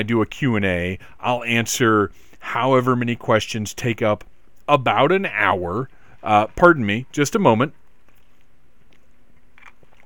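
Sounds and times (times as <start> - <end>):
speech: 0.0 - 7.8
faint steady hum: 0.0 - 10.0
person sipping eggnog mixed with rum: 8.0 - 10.0.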